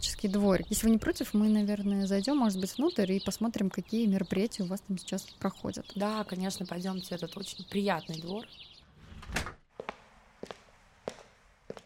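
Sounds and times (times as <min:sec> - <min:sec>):
speech: 0:00.0 - 0:08.6
door to a glassblowing workshop at an art glass museum opening: 0:09.0 - 0:09.6.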